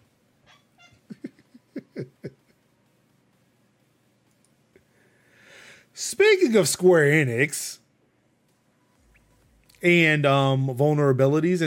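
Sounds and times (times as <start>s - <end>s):
faint hiss: 0.0s - 11.6s
cat making short chirping meows: 0.4s - 1.0s
laughter: 1.1s - 2.6s
speech: 6.1s - 7.8s, 9.8s - 11.6s.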